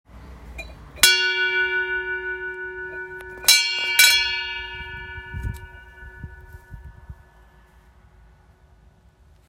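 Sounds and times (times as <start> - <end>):
bell ringing: 0.6 - 7.2.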